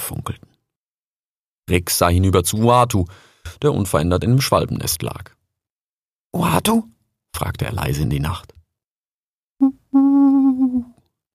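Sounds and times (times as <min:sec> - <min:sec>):
speech: 0:00.2 - 0:00.4, 0:01.7 - 0:05.4, 0:06.3 - 0:08.6
voice imitating an owl hoot at night: 0:09.6 - 0:11.0.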